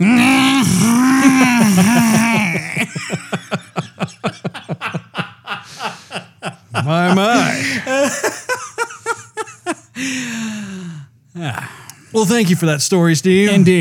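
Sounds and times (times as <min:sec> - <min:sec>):
person groaning in imitation: 0:00.0 - 0:03.0, 0:07.3 - 0:08.0, 0:11.4 - 0:11.9
laughter: 0:00.0 - 0:09.9
speech: 0:06.9 - 0:08.4, 0:12.2 - 0:13.7.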